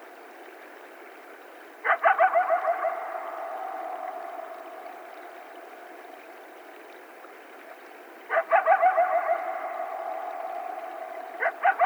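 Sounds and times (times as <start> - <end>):
several coyotes howling and yipping: 1.8 - 5.8, 8.3 - 11.8.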